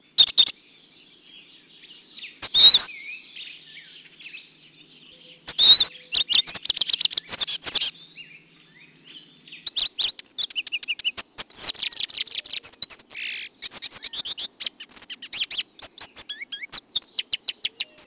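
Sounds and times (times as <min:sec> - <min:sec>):
Lawrence's goldfinch calling: 0:05.4 - 0:08.0, 0:09.6 - 0:18.0.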